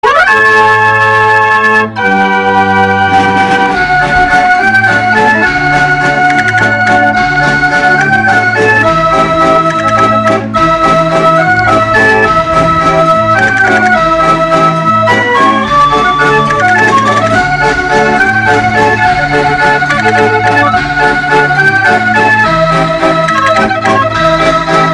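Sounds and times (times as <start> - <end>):
barrel organ orchestra music: 0.0 - 24.9.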